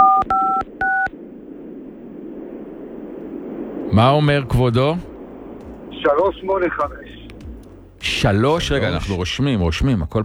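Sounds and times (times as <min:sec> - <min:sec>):
electronic keypad tones from a new mobile phone: 0:00.0 - 0:01.1
faint hum: 0:00.0 - 0:10.2
speech: 0:03.9 - 0:05.1, 0:06.0 - 0:07.2, 0:08.0 - 0:10.2.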